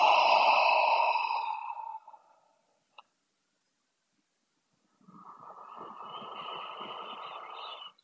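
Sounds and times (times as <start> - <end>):
long airy exhale through a slightly opened mouth: 0.0 - 2.4
steady inhale through the nose: 0.0 - 2.4.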